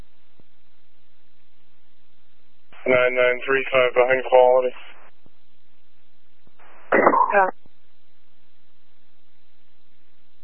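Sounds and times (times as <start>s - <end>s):
speech: 2.9s - 4.8s, 7.0s - 7.6s
sneeze: 6.9s - 7.5s.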